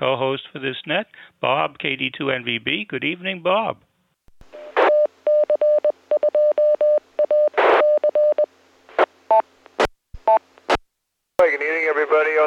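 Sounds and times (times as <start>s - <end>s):
speech: 0.0s - 3.9s, 11.4s - 12.4s
Morse code beeps transmitted over radio: 4.6s - 8.5s
radio static and squelch crackle: 7.6s - 7.9s, 11.4s - 12.4s.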